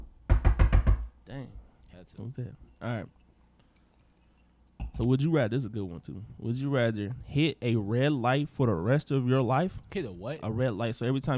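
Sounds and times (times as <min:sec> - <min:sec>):
knocking on wood: 0:00.0 - 0:01.1
speech: 0:01.3 - 0:03.2, 0:05.0 - 0:11.3.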